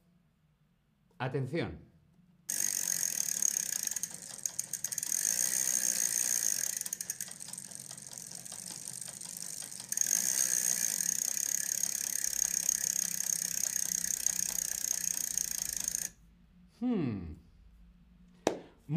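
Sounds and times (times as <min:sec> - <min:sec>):
speech: 0:01.2 - 0:01.9
bicycle freewheel ratcheting: 0:02.5 - 0:16.2.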